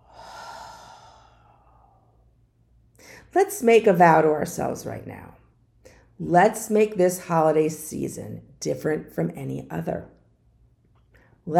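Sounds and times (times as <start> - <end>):
deep breath in and out during a guided relaxation exercise: 0.0 - 2.4
speech: 3.3 - 5.4, 6.2 - 10.2.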